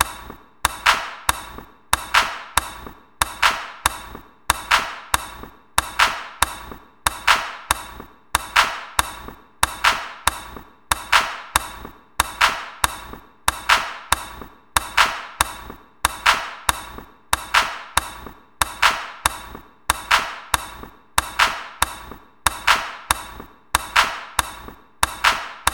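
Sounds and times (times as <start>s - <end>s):
handclap: 0.0s - 25.7s.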